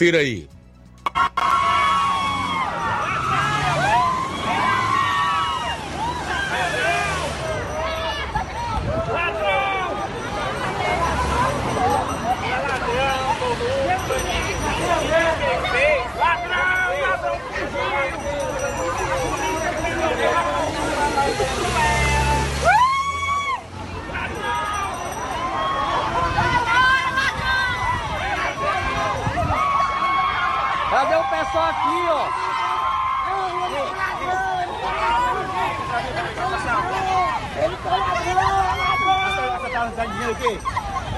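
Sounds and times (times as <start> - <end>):
speech: 0.0 - 0.6, 31.3 - 32.4, 39.8 - 40.8
large outdoor crowd in Teresina Brazil shouting and jeering at passing motorcade: 1.0 - 41.1.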